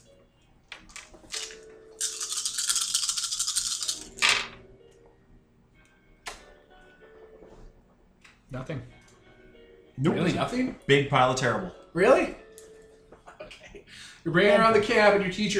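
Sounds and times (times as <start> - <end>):
dice shaken in a hand and rolled: 0.9 - 4.5
speech: 8.5 - 9.0, 10.0 - 12.4, 14.2 - 15.5.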